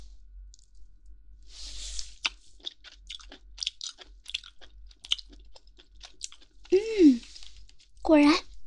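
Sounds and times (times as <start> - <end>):
crunchy chewing of crispy jowl meat: 2.0 - 8.0.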